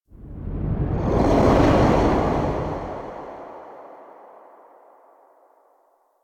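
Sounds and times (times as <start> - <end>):
transition whoosh: 0.4 - 5.0.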